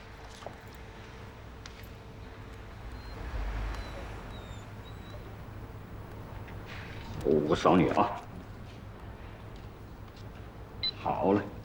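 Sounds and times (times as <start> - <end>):
steady low hum: 1.0 - 11.6
many stray dogs whining: 2.5 - 8.9.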